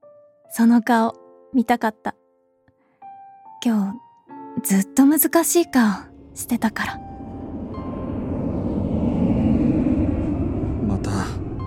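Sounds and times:
speech: 0.6 - 2.2, 3.6 - 4.0, 4.6 - 7.0
fighter jet passing overhead: 6.1 - 11.6.

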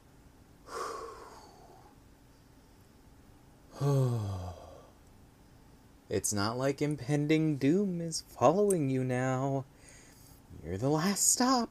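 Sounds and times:
deep breaths: 0.6 - 2.0, 3.7 - 5.0, 9.7 - 10.5
speech: 6.1 - 9.7, 10.6 - 11.6.

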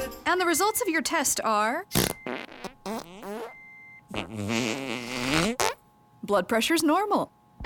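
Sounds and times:
speech: 0.4 - 3.1, 4.1 - 5.6, 6.3 - 7.6
steady electronic beep tone: 0.5 - 0.9, 1.9 - 2.5, 3.4 - 4.0
loud farting: 1.9 - 5.8.

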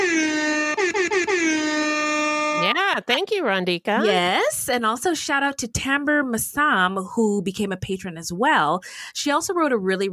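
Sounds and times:
hip hop air horn sound effect blaring: 0.0 - 3.0
speech: 3.0 - 10.1.

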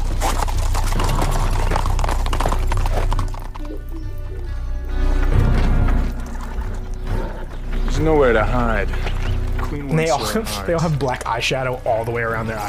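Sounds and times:
horse whinnying: 0.0 - 4.5
black horses' hooves clip-clopping on a hard surface: 0.0 - 12.6
speech: 8.0 - 9.1, 9.7 - 12.6.

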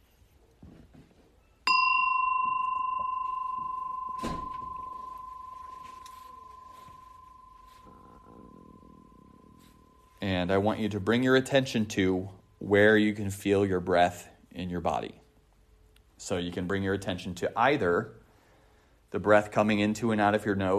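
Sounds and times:
faint room noise: 0.0 - 20.7
meditation bell struck at a meditation session: 1.6 - 12.0
speech: 10.2 - 15.2, 16.2 - 18.2, 19.1 - 20.7.

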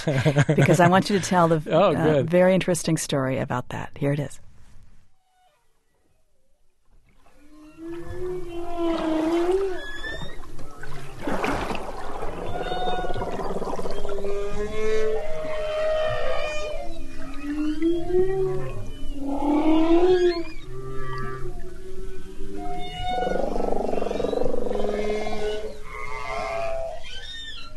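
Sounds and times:
laughter: 0.0 - 1.4
speech: 0.0 - 4.5
humpback whale song underwater: 7.3 - 27.7.

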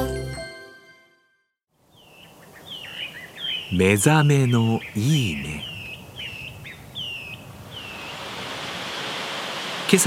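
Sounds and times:
speech: 3.7 - 5.7
Tanashita Fudo waterfall in Gunma Prefecture Japan pouring from huge rocks: 7.8 - 10.0.

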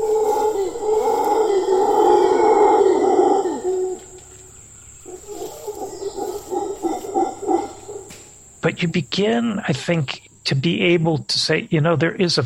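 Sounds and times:
howler monkeys roaring and grunting: 0.0 - 8.8
steady high insect drone: 0.0 - 12.4
speech: 8.8 - 12.4.

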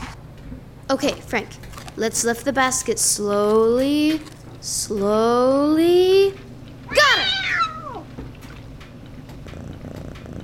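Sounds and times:
speech: 0.9 - 6.4
female cat meowing under a laundry basket: 6.9 - 8.1
female cat purring while scratched behind the ears: 7.4 - 10.4.

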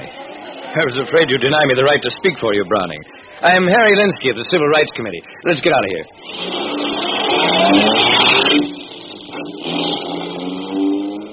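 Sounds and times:
speech: 0.8 - 6.4, 7.7 - 8.6
car engine revving and pulling away: 6.2 - 11.3.

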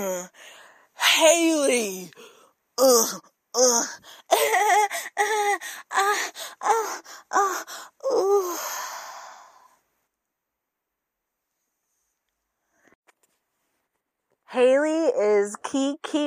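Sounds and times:
speech: 0.0 - 9.0, 14.5 - 16.2
person out of breath panting and moaning: 1.8 - 9.7.

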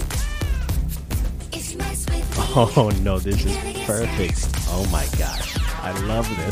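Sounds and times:
cat meowing: 0.1 - 0.8
bouncy video game character emote music with thumping beat: 2.2 - 6.4
laughter: 2.3 - 3.3
speech: 2.5 - 6.4.

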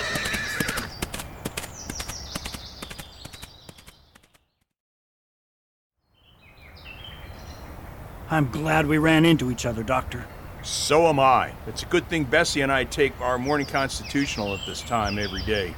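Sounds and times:
bucking horse whinnying: 0.0 - 1.0
hoof clatters of a horse bucking wildly: 0.0 - 4.4
speech: 8.3 - 15.7.

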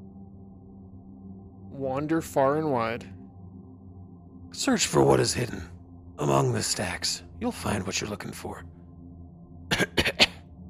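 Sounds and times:
speech: 1.7 - 3.2, 4.6 - 8.8
dry raspy coughs: 9.7 - 10.5.

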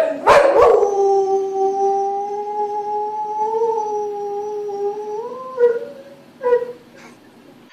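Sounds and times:
bull boxer dog barking: 0.0 - 0.8
bull boxer dog howling: 0.0 - 6.8.

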